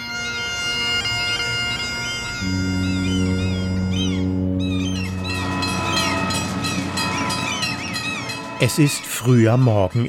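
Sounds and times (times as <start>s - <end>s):
passenger train engine droning at a station platform in Vancouver Canada: 0.0s - 10.0s
shifting high-pitched squeals and tones: 0.8s - 10.0s
loud sustained horn-like chord: 2.3s - 9.3s
speech: 8.6s - 10.0s.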